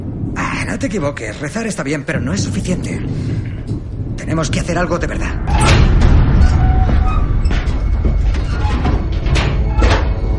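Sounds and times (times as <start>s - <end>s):
steady low rumble: 0.0s - 10.3s
speech: 0.7s - 3.4s, 4.3s - 5.8s
door being opened and blocked shut aboard a ship: 5.4s - 10.3s.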